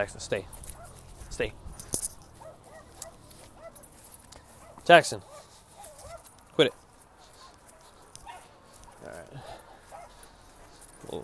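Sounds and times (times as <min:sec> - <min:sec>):
speech: 0:00.0 - 0:00.6, 0:01.3 - 0:02.0, 0:04.8 - 0:05.3, 0:06.6 - 0:06.8
small dogs yipping: 0:00.6 - 0:06.5, 0:07.2 - 0:10.9.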